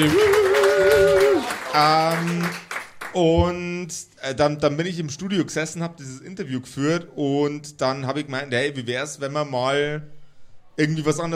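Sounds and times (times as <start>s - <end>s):
speech: 0.0s - 0.4s, 1.8s - 10.2s, 10.8s - 11.3s
high whooping cheers: 0.0s - 2.1s
small group applauding: 0.0s - 3.2s.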